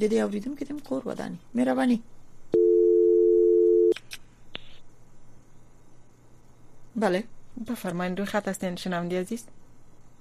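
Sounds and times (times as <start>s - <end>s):
speech: 0.0s - 2.2s, 7.0s - 9.6s
telephone dial tone after a dropped call: 2.6s - 4.0s.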